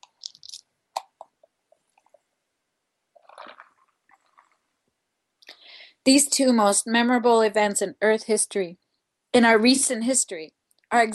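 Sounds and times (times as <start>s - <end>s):
person sipping a drink: 0.0s - 2.2s, 3.2s - 4.8s
wet mouth clicks and smacks: 0.0s - 2.2s, 3.2s - 4.6s
soft gulping swallow: 3.2s - 4.6s
speech: 6.0s - 11.1s.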